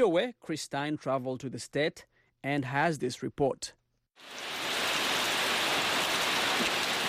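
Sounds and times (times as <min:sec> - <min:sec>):
speech: 0:00.0 - 0:04.6
steady rain pouring on a ruined church: 0:04.2 - 0:07.0.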